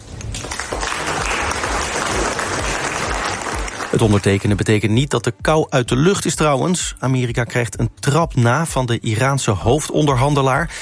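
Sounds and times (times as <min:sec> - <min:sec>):
applause at a formal dinner: 0:00.0 - 0:04.6
speech: 0:03.9 - 0:10.8.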